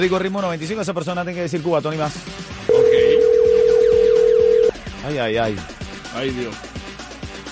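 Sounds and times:
speech: 0:00.0 - 0:02.6, 0:05.0 - 0:06.7
telephone tone of an outgoing call being dialled and ringing: 0:02.7 - 0:04.8.

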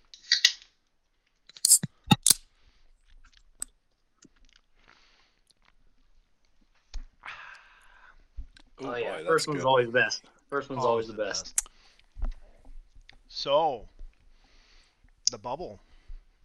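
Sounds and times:
beer cans being cracked open: 0:01.5 - 0:02.4
speech: 0:08.8 - 0:11.6, 0:13.4 - 0:13.9, 0:15.3 - 0:15.9.

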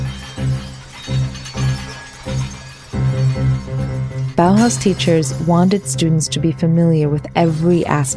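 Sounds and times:
wine glass played with a bow: 0:00.0 - 0:06.4
speech: 0:04.4 - 0:08.1.

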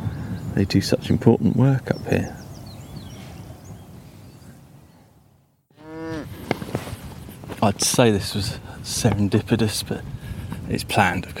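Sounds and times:
outdoor wind rumble: 0:00.0 - 0:05.4, 0:06.0 - 0:11.3
speech: 0:00.6 - 0:02.4, 0:07.6 - 0:10.1, 0:10.7 - 0:11.3
Highland cow mooing in a field: 0:05.7 - 0:06.3.

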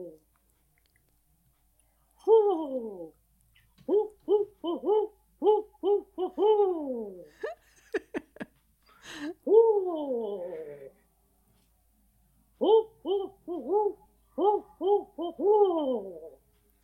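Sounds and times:
person imitating owl hoots to call in neighborhood owls: 0:00.0 - 0:00.3, 0:02.2 - 0:03.2, 0:03.8 - 0:07.5, 0:09.3 - 0:11.0, 0:12.6 - 0:16.4.

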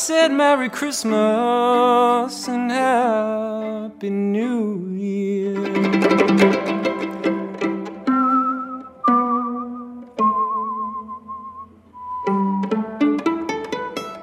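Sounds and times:
speech: 0:00.0 - 0:07.1
plucked instrumental chords: 0:05.6 - 0:14.2
person whistling a slow melody: 0:08.0 - 0:13.0.

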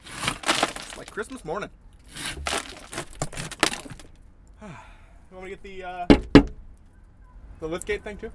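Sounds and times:
glass being smashed: 0:00.0 - 0:01.4, 0:02.4 - 0:04.1
speech: 0:01.2 - 0:02.2, 0:04.6 - 0:06.6, 0:07.6 - 0:08.3.

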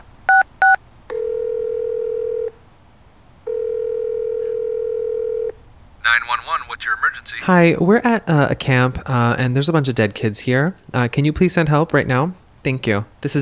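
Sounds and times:
long steady phone line ringing tones: 0:01.1 - 0:02.5, 0:03.5 - 0:05.6
speech: 0:06.2 - 0:13.3.

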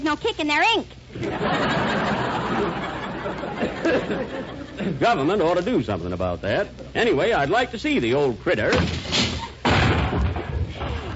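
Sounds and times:
speech: 0:00.1 - 0:09.2
laughter: 0:01.1 - 0:05.5
someone smashing through a glass window: 0:08.6 - 0:11.1.

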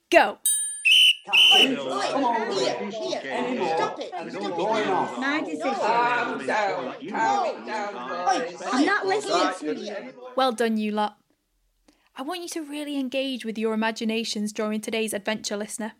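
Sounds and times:
speech: 0:00.1 - 0:00.5, 0:01.3 - 0:11.2, 0:12.2 - 0:15.9
shrill referee-style whistle blasts: 0:00.8 - 0:01.7
crowd of voices chattering excitedly: 0:01.2 - 0:10.3.

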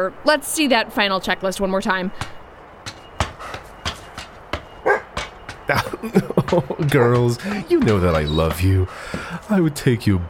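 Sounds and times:
speech: 0:00.0 - 0:03.0, 0:05.7 - 0:10.2
two nervous dogs barking: 0:04.7 - 0:08.0
laughter: 0:05.7 - 0:08.9.

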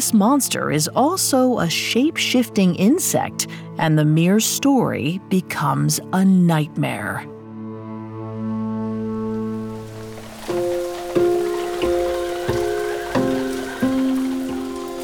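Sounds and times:
speech: 0:00.0 - 0:07.4
steady rain pattering and hissing: 0:09.2 - 0:15.0.

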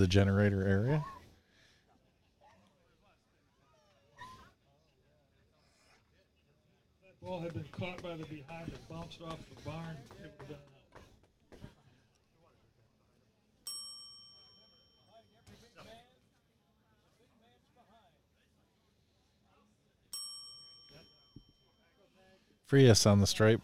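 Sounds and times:
speech: 0:00.0 - 0:01.2, 0:07.2 - 0:10.7, 0:22.7 - 0:23.6
bells ringing: 0:13.7 - 0:15.3, 0:20.1 - 0:21.9.

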